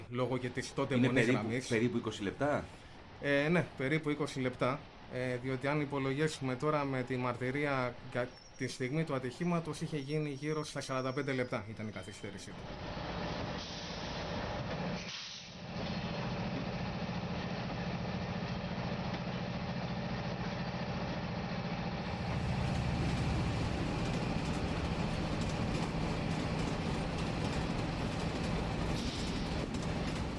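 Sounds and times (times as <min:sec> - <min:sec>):
speech: 0:00.1 - 0:13.1
diesel train engine idling and pulling away in Larisa Greece: 0:12.6 - 0:30.3.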